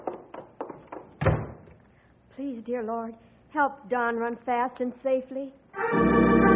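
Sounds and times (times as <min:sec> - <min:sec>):
door being opened: 0:01.1 - 0:01.8
dull wooden thunks and clatters: 0:01.2 - 0:01.7
speech: 0:02.6 - 0:06.4.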